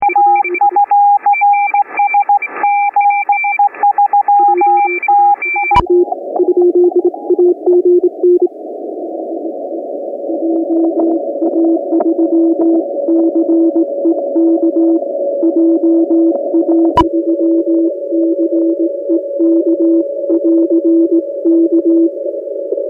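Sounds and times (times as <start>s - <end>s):
morse code tones: 0.0s - 8.5s, 10.4s - 22.1s.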